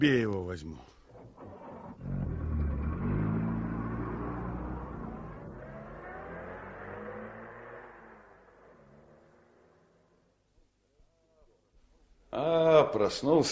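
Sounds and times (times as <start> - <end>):
speech: 0.0 - 1.0, 13.0 - 13.4
car engine starting, revving and pulling away: 1.8 - 10.4.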